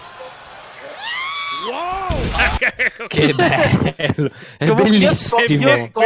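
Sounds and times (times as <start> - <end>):
noisy roaring crowd-like wash: 0.0 - 3.6
loud drawn-out scream in a wrestling audio clip: 0.9 - 2.6
speech: 1.0 - 6.0
laughter: 1.7 - 5.3
sharp crashing bursts: 1.9 - 2.8.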